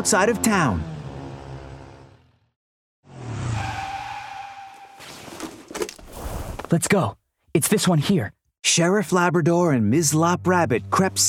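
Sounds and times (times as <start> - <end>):
speech: 0.0 - 1.0, 6.7 - 11.2
police motorcycle revving and pulling away fast: 0.0 - 2.5
police motorcycle tires squealing: 3.1 - 5.4.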